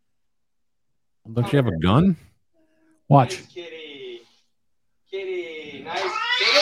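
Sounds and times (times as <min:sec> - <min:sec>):
speech: 0:01.3 - 0:02.3, 0:03.1 - 0:03.7
cat yowling aggressively: 0:05.9 - 0:06.6.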